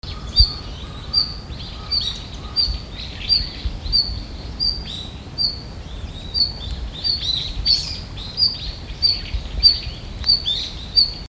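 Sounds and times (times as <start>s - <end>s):
red-flanked bluetail calls: 0.0s - 11.3s.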